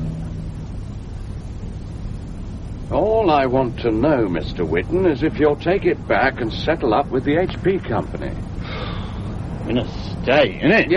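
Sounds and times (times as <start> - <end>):
car engine drone: 0.0 - 10.9
road noise of a car driving on the road: 0.0 - 10.9
speech: 2.9 - 8.6, 9.7 - 10.9.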